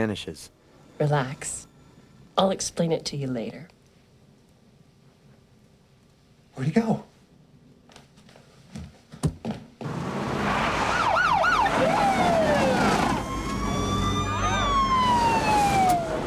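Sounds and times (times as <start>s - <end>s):
speech: 0.0s - 1.7s, 2.4s - 3.8s, 6.6s - 7.1s
police car sirens wailing: 9.9s - 16.2s.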